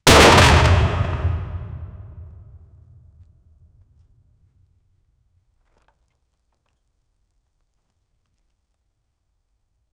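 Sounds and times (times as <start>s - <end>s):
cannon ball hitting the ship: 0.0s - 2.9s.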